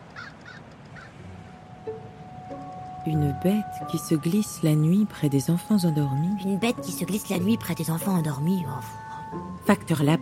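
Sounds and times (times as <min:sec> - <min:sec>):
low steady rumble: 0:00.0 - 0:10.2
crow cawing: 0:00.1 - 0:01.2
faint tonal squeak: 0:01.0 - 0:10.2
speech: 0:03.1 - 0:10.2.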